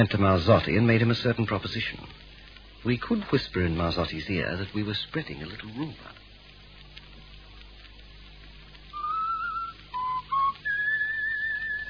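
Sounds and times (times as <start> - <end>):
speech: 0.0 - 2.2, 2.8 - 6.2
faint hiss: 0.0 - 11.8
person whistling a tune: 8.9 - 11.8.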